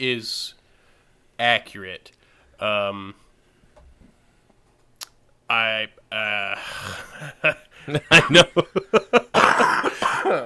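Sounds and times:
speech: 0.0 - 0.6, 1.4 - 3.2, 5.5 - 9.7
laughter: 6.8 - 10.4
person coughing: 9.3 - 10.4
throat clearing: 9.4 - 10.4.

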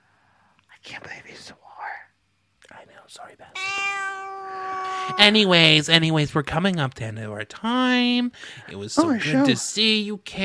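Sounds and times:
soft breathy whisper-like sounds and short murmurs: 0.4 - 3.6, 4.7 - 5.4
cat meowing loudly: 3.6 - 5.6
speech: 5.1 - 10.4.

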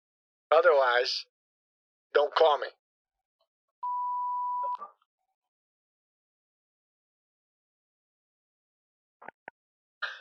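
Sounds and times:
speech: 0.5 - 1.4, 2.1 - 2.8
voicemail beep: 3.8 - 4.9.

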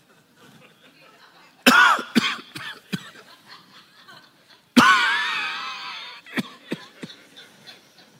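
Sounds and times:
laughter: 0.0 - 1.7, 2.7 - 8.1
person faking a harsh hacking cough: 1.7 - 3.1, 4.8 - 5.5.

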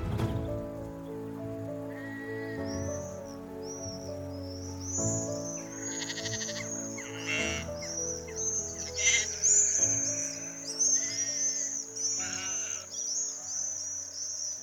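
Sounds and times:
swifts screaming overhead on a still evening: 0.8 - 14.6
sheep bleating on a still evening: 5.8 - 7.6.

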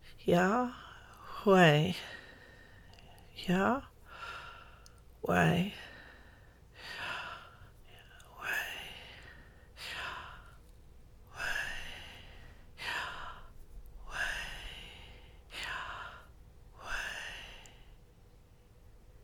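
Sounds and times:
speech: 0.2 - 0.8, 1.4 - 2.2, 3.4 - 3.9, 5.2 - 5.8
slow deep breathing in and out: 2.0 - 3.2, 4.1 - 5.0, 5.8 - 18.0.

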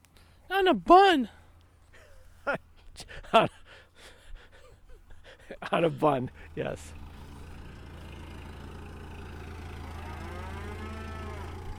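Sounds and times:
speech: 0.5 - 1.4, 2.5 - 3.6, 5.6 - 7.0
cows mooing: 9.4 - 11.7.

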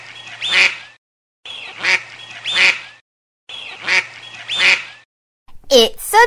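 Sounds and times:
duck quacking: 0.4 - 0.8, 1.6 - 2.9, 3.7 - 5.0
person speaking: 5.5 - 6.2.

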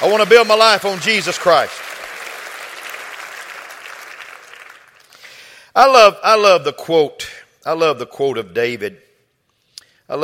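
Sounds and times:
speech: 0.0 - 1.9, 5.8 - 9.0
crowd applauding: 0.0 - 5.4.

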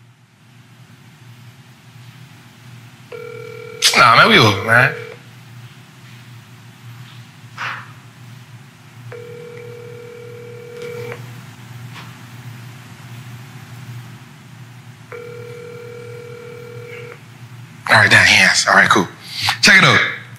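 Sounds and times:
speech: 3.1 - 3.4, 4.0 - 5.0, 18.6 - 20.1
electronic telephone ringback tones: 3.1 - 5.2, 9.1 - 11.2, 15.1 - 17.2.

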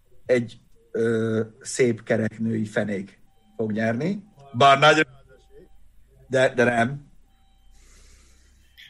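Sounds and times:
speech: 0.3 - 5.2, 6.3 - 7.1
reversing truck backup beeper: 3.2 - 8.8.

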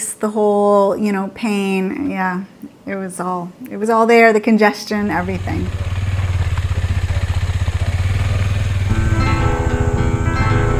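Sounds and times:
speech: 0.2 - 6.0
motorcycle engine thrumming while riding: 5.0 - 10.7.

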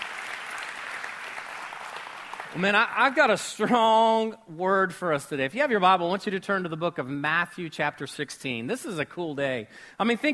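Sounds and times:
audience applause at a church for camp adult leaders: 0.0 - 2.8
speech: 2.5 - 10.3.

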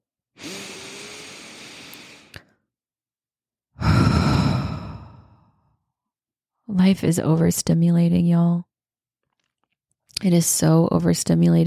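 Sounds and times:
deep breath taken during a relaxation moment: 0.4 - 2.6, 3.8 - 5.6
speech: 6.8 - 8.7, 10.2 - 11.6.

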